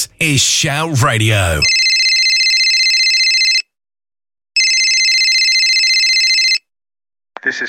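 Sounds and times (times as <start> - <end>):
speech: 0.1 - 1.8
telephone ringing with a long electronic trill: 1.2 - 3.7, 4.6 - 6.7.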